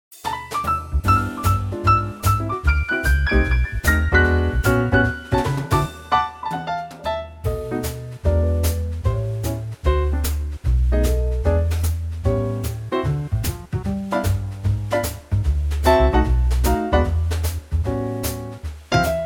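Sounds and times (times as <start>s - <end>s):
song backing track without guitar in D to Eb: 0.2s - 19.2s.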